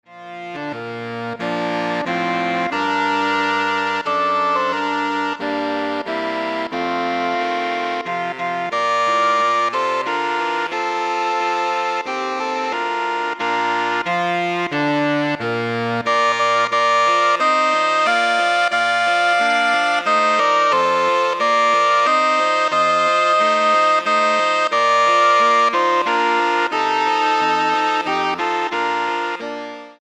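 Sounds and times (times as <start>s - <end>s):
saxophone ensemble: 0.1s - 29.9s.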